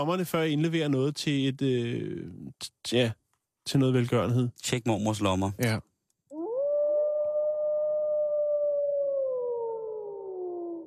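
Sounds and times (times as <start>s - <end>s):
speech: 0.0s - 5.9s
wolf howling: 6.3s - 10.8s.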